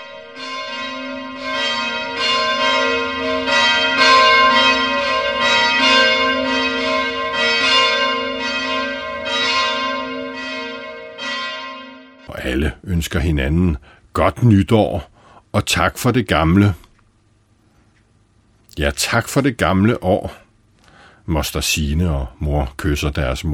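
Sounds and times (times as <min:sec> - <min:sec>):
church clock striking twelve with bells ringing: 0:00.0 - 0:13.8
speech: 0:12.6 - 0:16.8, 0:18.8 - 0:20.4, 0:21.3 - 0:23.5.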